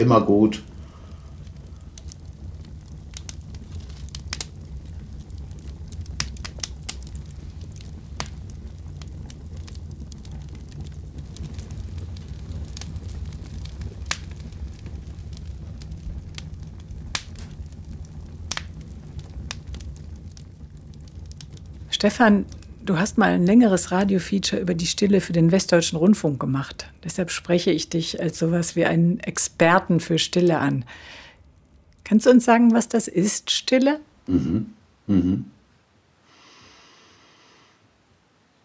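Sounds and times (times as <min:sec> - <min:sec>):
speech: 0:00.0 - 0:00.7, 0:22.0 - 0:31.2, 0:32.1 - 0:35.6
fire crackling: 0:00.0 - 0:38.6.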